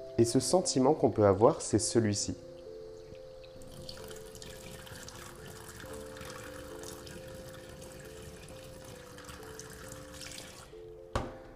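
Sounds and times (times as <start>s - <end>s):
speech: 0.2s - 2.5s
tap water filling a drinking glass: 3.0s - 10.7s.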